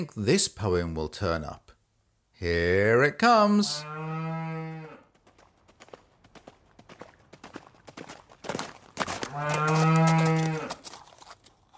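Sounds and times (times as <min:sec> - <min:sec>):
speech: 0:00.0 - 0:01.7, 0:02.4 - 0:04.4
cow mooing: 0:03.7 - 0:05.0, 0:09.3 - 0:10.8
cow hoofbeats galloping: 0:05.0 - 0:11.7.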